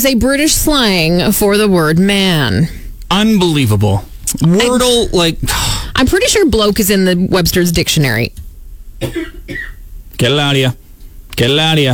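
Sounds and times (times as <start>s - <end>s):
speech: 0.0s - 8.4s, 9.0s - 10.8s, 11.4s - 11.9s
dry coughs from a sudden dry throat: 9.0s - 9.8s.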